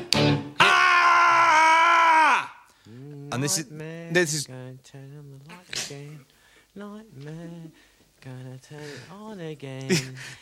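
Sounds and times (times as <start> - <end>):
person crying out: 0.6 - 2.6
person screaming: 0.6 - 2.7
speech: 3.4 - 5.0, 8.7 - 10.4.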